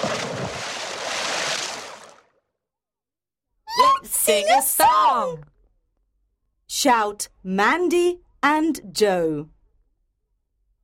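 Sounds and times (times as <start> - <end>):
water splashing from someone jumping in and swimming: 0.0 - 2.4
speech: 4.0 - 5.5, 6.8 - 9.6.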